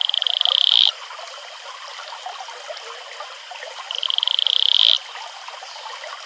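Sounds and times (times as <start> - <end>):
Atelopus franciscus male advertisement call with pulsed trills: 0.0 - 0.9, 3.9 - 5.0
running water: 0.0 - 6.2.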